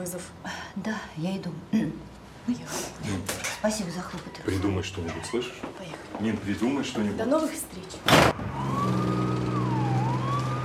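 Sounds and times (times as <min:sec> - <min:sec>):
speech: 0:00.0 - 0:09.0
ambulance siren wailing as it pulls up to an apartment building entrance: 0:08.2 - 0:10.6.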